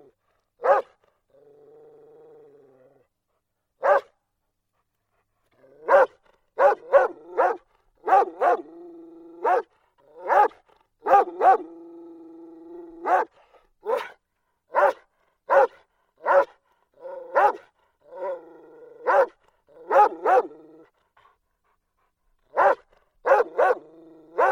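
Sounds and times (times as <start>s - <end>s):
dog barking: 0.6s - 1.0s, 3.8s - 4.2s, 5.8s - 8.7s, 9.4s - 11.7s, 13.0s - 18.4s, 19.0s - 20.6s, 22.5s - 24.5s.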